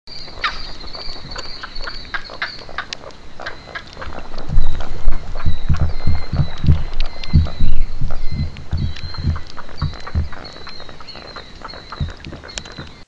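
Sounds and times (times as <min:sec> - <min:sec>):
green heron Butorides virescens call: 0:00.1 - 0:13.0.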